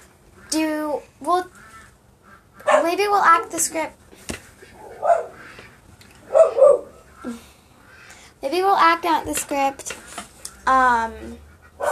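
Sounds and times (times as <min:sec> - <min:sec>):
faint hum: 0:00.0 - 0:11.8
speech: 0:01.2 - 0:01.6, 0:03.0 - 0:04.0, 0:07.2 - 0:07.5, 0:08.4 - 0:10.0, 0:10.6 - 0:11.8
dog barking: 0:02.6 - 0:03.0, 0:04.8 - 0:05.5, 0:06.2 - 0:07.0.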